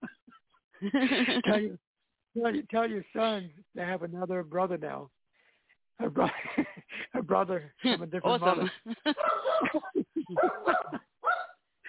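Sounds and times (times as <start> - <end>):
laughter: 0.0 - 1.8, 8.4 - 11.1
speech: 0.8 - 5.2, 6.0 - 11.0
dog barking: 9.2 - 9.8, 10.4 - 11.6.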